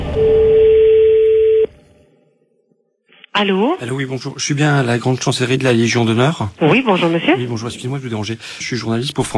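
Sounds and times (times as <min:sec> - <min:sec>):
ringback tone of an outgoing telephone call: 0:00.2 - 0:01.7
speech: 0:03.4 - 0:09.3.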